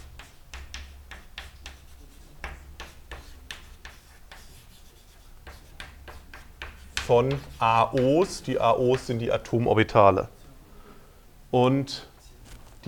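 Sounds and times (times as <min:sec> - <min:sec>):
pen scratching on paper writing a chemistry formula by hand: 0:00.0 - 0:09.1
speech: 0:07.1 - 0:10.4, 0:11.5 - 0:12.1.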